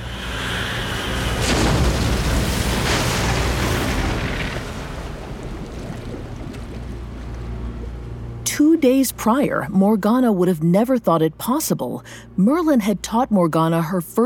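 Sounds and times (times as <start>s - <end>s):
surging ocean water: 0.0s - 9.1s
deep watery rumble of a sinking boat: 0.0s - 14.0s
boat cracked in two by the ocean: 1.2s - 8.1s
speech: 8.8s - 14.2s.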